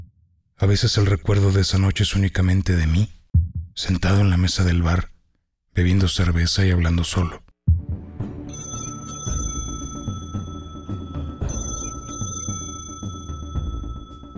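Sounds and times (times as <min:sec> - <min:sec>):
speech: 0:00.6 - 0:03.2, 0:03.8 - 0:05.1, 0:05.8 - 0:07.5
rhythmic low rumble: 0:07.7 - 0:14.3
telephone ringing with a long trill: 0:08.5 - 0:14.3.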